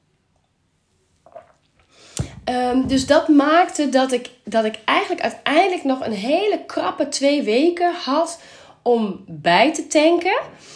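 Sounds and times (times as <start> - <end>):
person sipping a drink: 1.1 - 2.5
faint swallowing: 1.2 - 2.8
cup set down with a sharp thump: 2.2 - 3.3
speech: 2.5 - 10.7.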